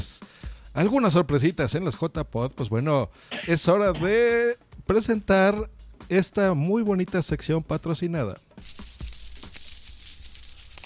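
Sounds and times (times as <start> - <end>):
speech: 0.0 - 0.2, 0.8 - 9.0
coins shaking and clinking together: 8.6 - 10.8.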